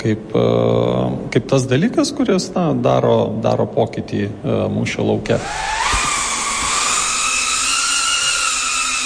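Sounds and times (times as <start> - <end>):
speech: 0.0 - 5.9
small drone propellers buzzing while hovering: 5.4 - 9.0.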